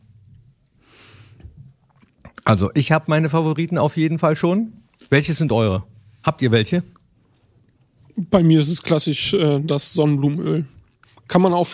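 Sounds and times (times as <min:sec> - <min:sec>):
person chewing a bite of food: 0:01.4 - 0:02.4
person swallowing: 0:01.4 - 0:02.5
speech: 0:02.5 - 0:07.0, 0:08.2 - 0:11.7.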